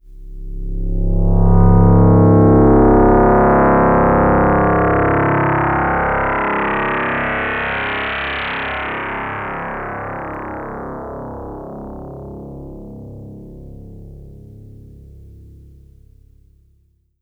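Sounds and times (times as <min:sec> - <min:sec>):
Yamaha DX7 synthesizer filter sweep on C1: 0:00.5 - 0:12.3.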